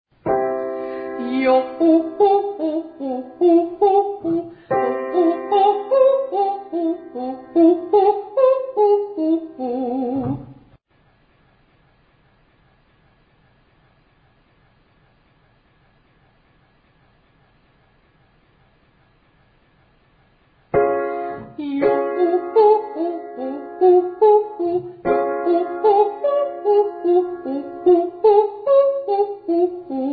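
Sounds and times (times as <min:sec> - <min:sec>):
descending vocal triads: 0:01.0 - 0:10.7, 0:21.4 - 0:30.1.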